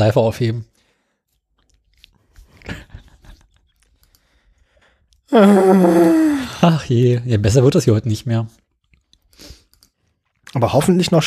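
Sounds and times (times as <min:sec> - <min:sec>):
speech: 0:00.0 - 0:00.7, 0:05.3 - 0:08.6, 0:10.5 - 0:11.2
crunching and nibbling on a soap chip: 0:01.2 - 0:04.2, 0:08.6 - 0:10.7.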